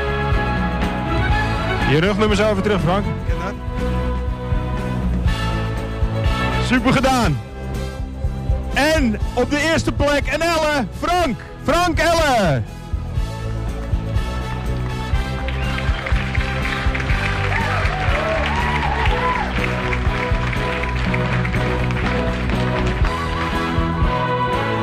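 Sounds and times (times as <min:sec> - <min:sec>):
music playing: 0:00.0 - 0:24.8
speech: 0:01.9 - 0:04.1, 0:06.7 - 0:07.5, 0:08.8 - 0:12.8
crowd applauding champions at a prize ceremony: 0:13.7 - 0:24.3.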